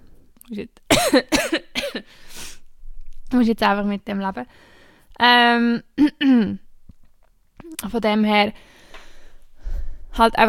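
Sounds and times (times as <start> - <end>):
speech: 0.5 - 2.4, 3.3 - 6.6, 7.8 - 8.8, 10.2 - 10.4
person clearing throat: 0.9 - 2.0
person coughing: 0.9 - 2.1.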